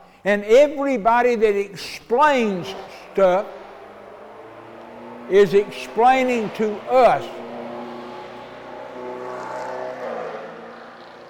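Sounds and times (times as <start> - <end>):
speech: 0.2 - 3.6, 5.3 - 7.4
car passing by: 2.6 - 11.2.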